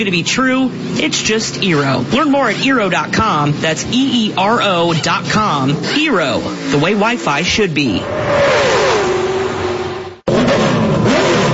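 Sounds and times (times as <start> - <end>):
speech: 0.0 - 8.7
NASCAR race car engine revving: 0.0 - 11.5.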